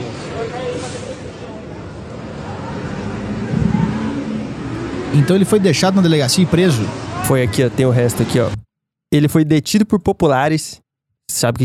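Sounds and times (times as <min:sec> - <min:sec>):
bus driving along a street with low engine drone: 0:00.0 - 0:07.2
crowd babble: 0:00.0 - 0:08.5
speech: 0:00.4 - 0:01.5, 0:05.2 - 0:11.6.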